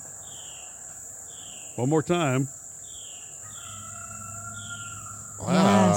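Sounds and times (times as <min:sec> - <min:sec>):
speech: 0:01.8 - 0:02.6
rooster crowing: 0:03.4 - 0:05.9.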